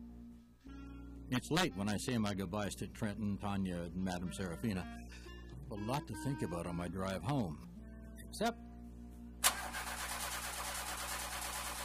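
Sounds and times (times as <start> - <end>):
speech: 1.3 - 7.7, 8.3 - 8.6
car engine cranking, failing to start: 9.4 - 11.1.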